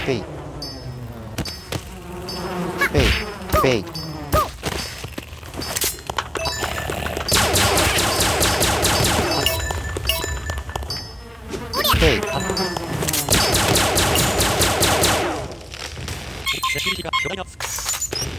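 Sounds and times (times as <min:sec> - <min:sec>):
speech: 0:00.0 - 0:00.3, 0:02.9 - 0:04.0
dense swarm of bees buzzing: 0:00.0 - 0:15.6
rapid popping bursts: 0:04.6 - 0:10.9, 0:11.8 - 0:18.3.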